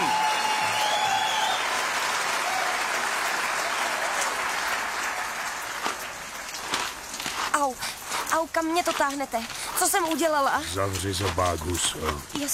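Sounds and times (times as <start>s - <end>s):
audience applause: 0.0s - 7.1s
speech: 8.4s - 12.5s.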